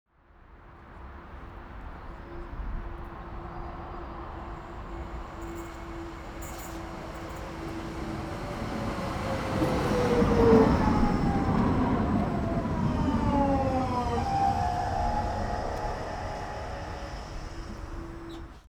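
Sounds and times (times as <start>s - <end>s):
old subway train arriving: 0.7s - 18.7s.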